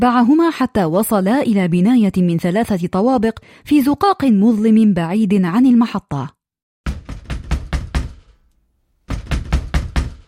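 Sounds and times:
speech: 0:00.0 - 0:06.4
fist pounding hard on a door: 0:06.9 - 0:08.4, 0:09.1 - 0:10.2.

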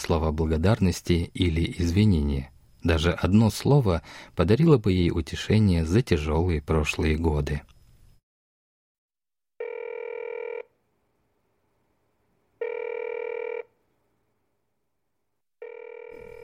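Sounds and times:
speech: 0:00.1 - 0:07.7
telephone ringing: 0:09.6 - 0:10.7, 0:12.6 - 0:13.7, 0:15.6 - 0:16.4.

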